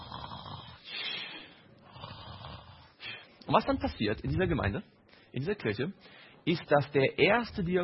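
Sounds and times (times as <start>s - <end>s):
voice imitating snoring: 0.0s - 1.2s, 1.9s - 3.0s
speech: 3.5s - 7.8s.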